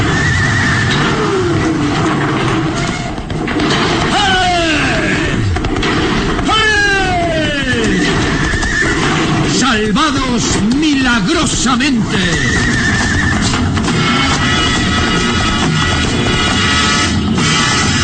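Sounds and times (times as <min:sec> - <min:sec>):
loud rumbling noise: 0:00.0 - 0:18.0
horses neighing as a bridge collapses: 0:04.0 - 0:16.4
speech: 0:11.6 - 0:12.6.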